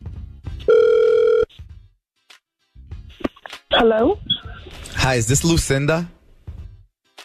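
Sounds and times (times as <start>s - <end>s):
outgoing phone call ringing placed from a radio station: 0.7s - 1.5s
speech: 3.8s - 4.3s, 5.0s - 6.2s.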